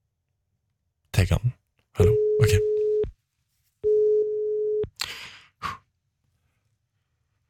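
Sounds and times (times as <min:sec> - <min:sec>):
speech: 0:01.2 - 0:02.7
phone line ringing tone during call: 0:02.0 - 0:03.1, 0:03.8 - 0:04.9.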